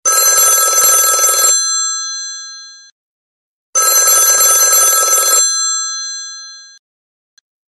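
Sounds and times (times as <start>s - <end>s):
vintage ringtone: 0.1s - 2.9s, 3.8s - 6.8s.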